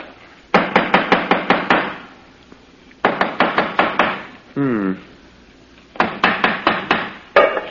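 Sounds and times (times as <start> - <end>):
hammer tapping on a hollow stone in the corner of a house: 0.5 - 2.0, 3.0 - 4.2, 6.0 - 7.2
person speaking: 4.5 - 5.2.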